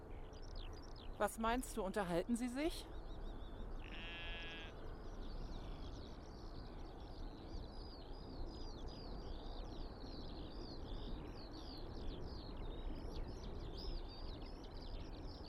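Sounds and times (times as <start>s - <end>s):
steady outdoor noise: 0.0s - 15.4s
speech: 1.2s - 3.0s
sheep bleating: 3.8s - 4.8s.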